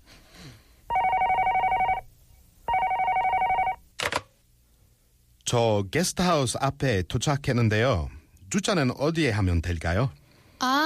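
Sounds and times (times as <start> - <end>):
telephone with trilling electronic ring: 0.9 - 2.1, 2.7 - 3.8
speech: 5.5 - 10.8.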